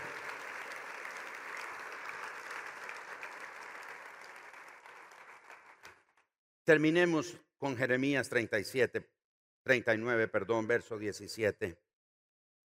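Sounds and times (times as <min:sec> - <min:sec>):
crowd at a sermon clapping: 0:00.0 - 0:06.3
speech: 0:06.7 - 0:11.8.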